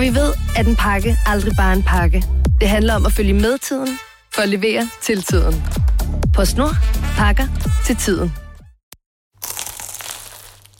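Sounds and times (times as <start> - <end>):
speech: 0.0 - 8.4
person biting into a crunchy croissant in Paris: 9.4 - 10.7.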